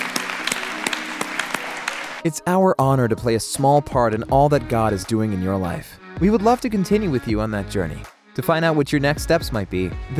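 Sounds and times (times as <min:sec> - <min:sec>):
church audience applauding: 0:00.0 - 0:02.3
speech: 0:02.2 - 0:10.1.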